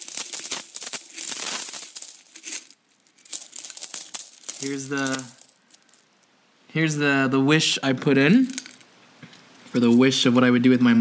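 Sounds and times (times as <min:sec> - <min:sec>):
many metal coins clinking and spilling from a packed coin container: 0:00.0 - 0:06.2, 0:08.3 - 0:08.9
speech: 0:04.6 - 0:05.4, 0:06.7 - 0:08.6, 0:09.7 - 0:10.9.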